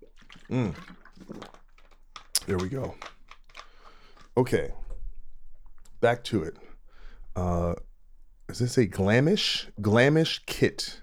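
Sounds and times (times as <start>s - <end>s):
liquid pouring with a gurgling trickle: 0.0s - 6.0s
person gulping a drink: 0.0s - 6.0s
speech: 0.5s - 1.0s, 2.5s - 3.1s, 4.4s - 4.8s, 6.0s - 6.6s, 7.4s - 7.8s, 8.5s - 11.0s.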